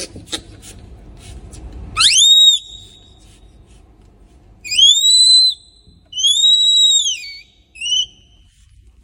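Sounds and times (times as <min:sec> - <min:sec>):
newborn red panda cub giving clear high whistles: 0:02.0 - 0:03.1, 0:04.7 - 0:08.4.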